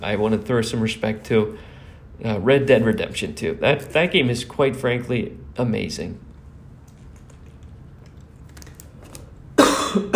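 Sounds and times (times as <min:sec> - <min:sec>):
speech: 0:00.0 - 0:06.3
harsh cough: 0:09.6 - 0:10.1.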